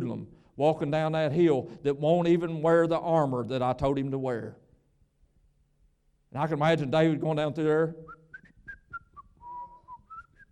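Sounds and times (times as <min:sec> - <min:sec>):
speech: 0:00.2 - 0:04.6, 0:06.3 - 0:08.2
person whistling a tune: 0:08.0 - 0:10.5.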